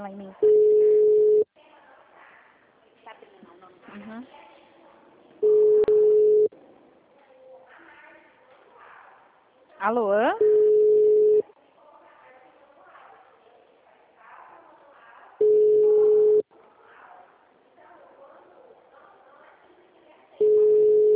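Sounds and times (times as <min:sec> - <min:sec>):
speech: 0:00.0 - 0:00.5, 0:09.9 - 0:10.4
people talking quietly: 0:00.0 - 0:21.1
ringback tone of an unanswered phone call: 0:00.4 - 0:01.5, 0:05.4 - 0:06.5, 0:10.4 - 0:11.4, 0:15.4 - 0:16.4, 0:20.4 - 0:21.1.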